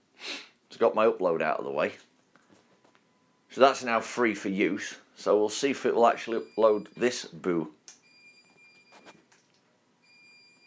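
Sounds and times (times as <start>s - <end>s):
speech: 0.8s - 2.1s, 3.6s - 7.8s
washing machine high electronic reminder beep: 8.0s - 9.0s, 10.0s - 10.6s.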